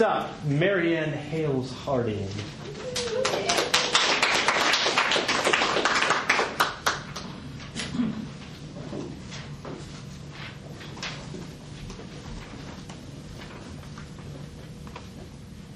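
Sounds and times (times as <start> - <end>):
speech: 0.0 - 3.6
crowd applauding: 2.8 - 7.3.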